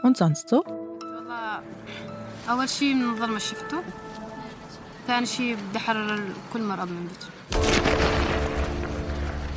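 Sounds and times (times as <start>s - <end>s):
speech: 0.0s - 4.2s, 5.0s - 8.2s
practice gunshots fired by a police unit in northeastern Syria: 7.5s - 9.4s.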